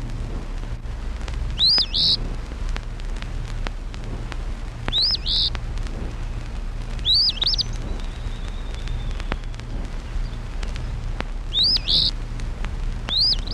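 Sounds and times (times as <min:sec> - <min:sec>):
low hum: 0:00.0 - 0:13.5
Eastern Phoebe song: 0:01.5 - 0:02.2, 0:04.9 - 0:06.4, 0:07.0 - 0:12.2, 0:13.1 - 0:13.5
faint thin whistle: 0:04.9 - 0:05.5, 0:07.0 - 0:09.6, 0:13.1 - 0:13.5.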